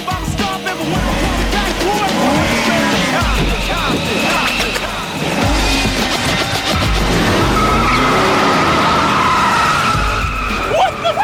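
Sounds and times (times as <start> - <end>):
car tires skidding and squealing during a test drive: 0.0 - 11.2
rumbling car engine: 0.0 - 11.2.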